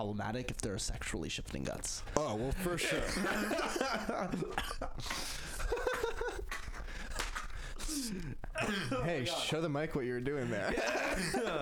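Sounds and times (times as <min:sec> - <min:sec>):
speech: 0:00.0 - 0:05.6, 0:08.0 - 0:11.5
people laughing: 0:02.4 - 0:07.2, 0:10.4 - 0:11.5
coughing into the microphone: 0:04.4 - 0:05.2, 0:07.8 - 0:09.2, 0:10.6 - 0:11.5.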